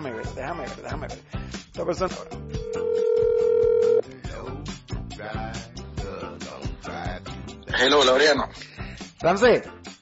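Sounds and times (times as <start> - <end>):
speech: 0.0 - 3.0, 7.8 - 9.8
ringback tone from an outgoing phone call: 2.6 - 4.0.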